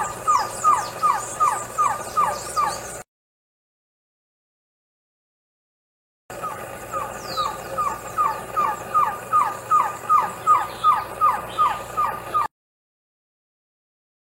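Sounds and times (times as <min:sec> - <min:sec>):
green-backed trogon singing mellow, slightly falling notes: 0:00.0 - 0:03.0, 0:06.4 - 0:12.5
thin high bird chirps: 0:00.0 - 0:03.0, 0:06.4 - 0:12.5.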